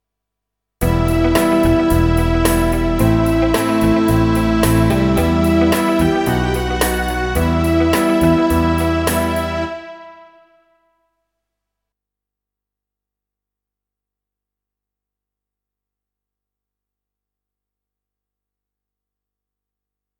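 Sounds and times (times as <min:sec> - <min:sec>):
bassoon playing E minor pop ballad riff: 0:00.8 - 0:10.8
English horn playing E minor pop ballad riff: 0:00.8 - 0:10.9.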